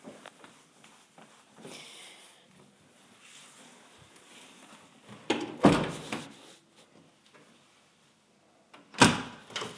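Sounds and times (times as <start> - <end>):
bedroom door shutting with a sharp thud: 5.3 - 6.0.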